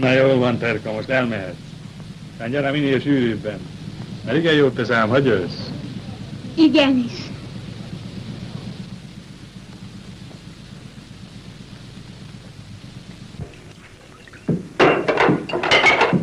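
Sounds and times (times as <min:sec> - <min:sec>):
speech: 0:00.0 - 0:01.7, 0:02.4 - 0:05.8, 0:06.6 - 0:07.3
low steady rumble: 0:00.0 - 0:14.8
plate being smashed with shattering fragments: 0:14.3 - 0:16.2.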